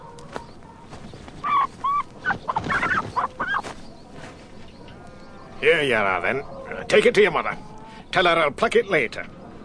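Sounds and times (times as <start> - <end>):
hen squawking and clucking in a coop: 1.3 - 3.8
speech: 5.6 - 9.4.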